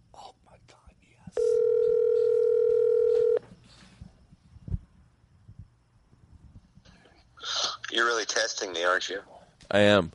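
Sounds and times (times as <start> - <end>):
telephone ringing tone while placing a call: 1.4 - 3.4
speech: 8.6 - 10.1.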